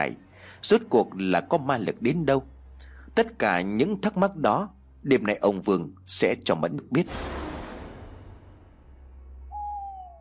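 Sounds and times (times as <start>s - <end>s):
speech: 0.0s - 2.5s, 3.2s - 7.4s
owl hooting at night in a mountain forest: 9.4s - 10.1s.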